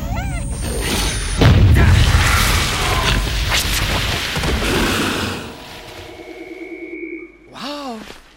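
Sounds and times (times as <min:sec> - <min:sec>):
grenade explosion in a video game: 0:01.4 - 0:05.3.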